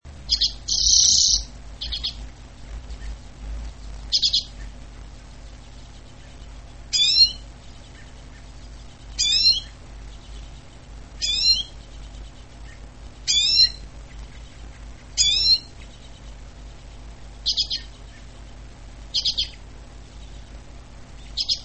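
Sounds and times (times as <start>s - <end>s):
common redpoll trilling and calling: 0.2s - 2.2s, 3.9s - 4.8s, 5.5s - 18.3s, 19.1s - 20.5s, 21.2s - 21.6s.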